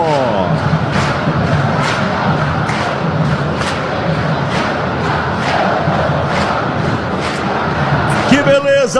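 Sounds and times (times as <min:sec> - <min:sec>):
huge crowd of fans singing and chanting in a packed arena: 0:00.0 - 0:08.9
steady rhythmic claps or drum thumps: 0:00.0 - 0:08.9.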